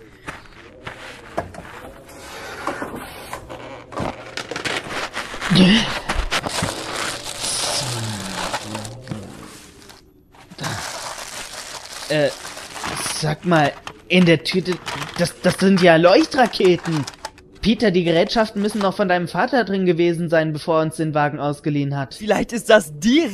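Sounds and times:
plastic tarp being handled and crinkling: 2.9s - 18.9s
speech: 5.6s - 6.0s, 12.1s - 12.4s, 13.4s - 23.3s.

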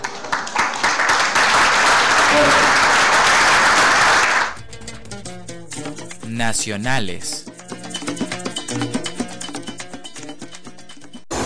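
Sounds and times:
audience applause in tribute to a late poet: 0.0s - 4.6s
speech: 6.5s - 7.5s.

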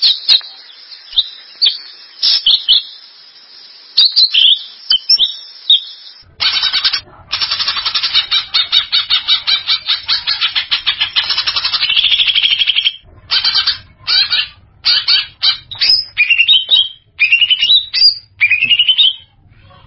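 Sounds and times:
greater green leafbird singing with chirps whistles and chattering trill: 0.0s - 3.1s, 4.0s - 19.8s.

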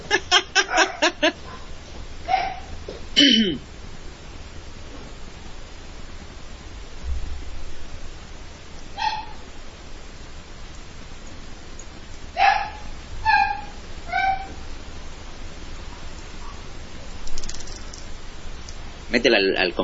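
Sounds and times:
laughter: 0.0s - 1.4s
low steady hiss: 0.0s - 19.8s
female pet dog barking in short high yips: 0.6s - 1.2s, 2.3s - 2.7s, 9.0s - 9.4s, 12.4s - 14.6s
speech: 1.2s - 1.4s, 3.2s - 3.7s, 19.2s - 19.8s.

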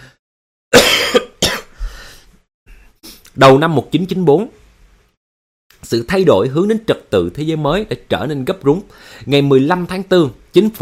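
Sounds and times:
person with a cold and runny nose coughing: 0.7s - 1.8s
speech: 3.4s - 4.6s, 5.9s - 10.8s.

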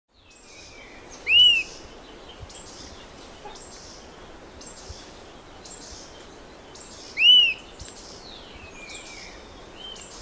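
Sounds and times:
faint hiss: 0.2s - 10.2s
bird giving a clear rising and falling whistled note: 1.2s - 1.7s, 7.2s - 7.6s.

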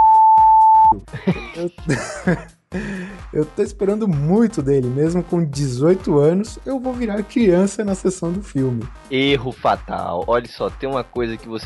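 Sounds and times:
censor beep: 0.0s - 1.0s
laughter: 1.0s - 2.9s
speech: 1.0s - 11.6s.

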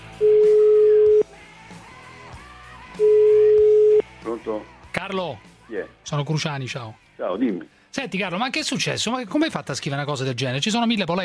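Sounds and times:
telephone ringback tone while placing a call: 0.2s - 1.2s, 3.0s - 4.0s
speech: 4.4s - 11.2s.

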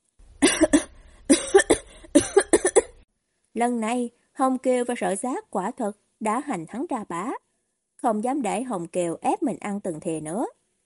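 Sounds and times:
man coughing violently: 0.4s - 3.0s
speech: 3.6s - 7.4s, 8.0s - 10.6s.

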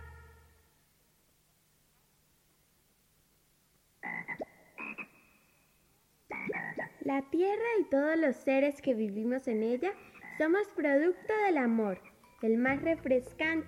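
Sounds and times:
faint hiss: 0.0s - 13.6s
frog croaking: 4.0s - 5.7s, 6.3s - 7.1s, 10.0s - 11.3s
speech: 7.1s - 13.6s.

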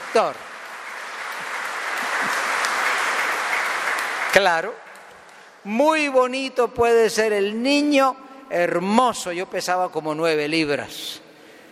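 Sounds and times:
congregation applause during a Pentecost church service: 0.0s - 5.6s
speech: 0.1s - 0.5s, 4.4s - 4.8s, 5.6s - 11.2s.

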